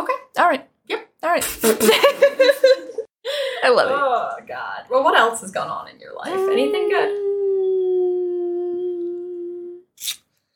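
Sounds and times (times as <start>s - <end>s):
speech: 0.4s - 2.2s, 3.7s - 7.2s
puppy howling: 6.3s - 9.8s.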